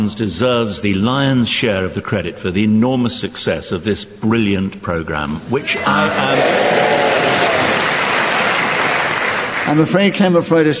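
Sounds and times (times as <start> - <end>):
speech: 0.0 - 7.1, 9.7 - 10.7
a few audience members clapping: 5.8 - 10.0.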